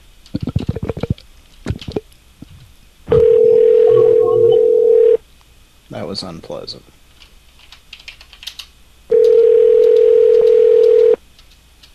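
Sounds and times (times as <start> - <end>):
speech: 0.3 - 0.6, 6.1 - 7.0
telephone dialing tone pulses: 3.1 - 5.2, 9.1 - 11.2.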